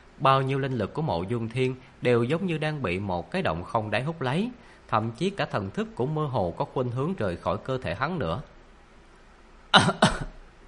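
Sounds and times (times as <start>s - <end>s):
speech: 0.2s - 8.5s, 9.7s - 10.1s
injured man dry coughing up blood: 9.7s - 10.4s.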